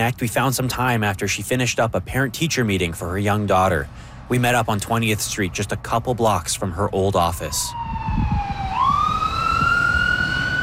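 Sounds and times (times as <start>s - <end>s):
speech: 0.0s - 8.5s
street traffic on 20th Street: 0.0s - 10.6s
siren wailing on 20th Street: 7.2s - 10.6s.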